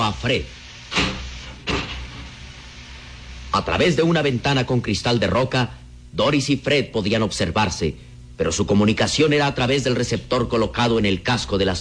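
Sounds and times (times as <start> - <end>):
constant low hum: 0.0 - 11.7
speech: 0.1 - 1.0, 3.6 - 11.7
hatch-like door sealing shut after a button is pressed: 0.9 - 2.2.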